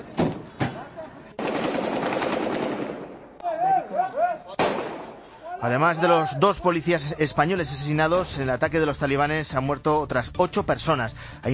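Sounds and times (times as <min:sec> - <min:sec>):
sustained rattling gunfire: 0:01.4 - 0:03.2
several sharp gunshots: 0:01.4 - 0:03.3, 0:04.6 - 0:05.3
gunfire bursts: 0:01.4 - 0:05.6
faint voices shouting: 0:03.4 - 0:04.6, 0:05.3 - 0:06.6
speech: 0:05.6 - 0:11.5.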